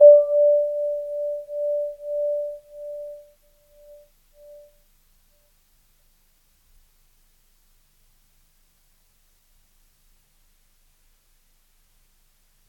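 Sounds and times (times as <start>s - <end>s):
Kawai grand piano D4 note sustaining: 0.0s - 3.2s.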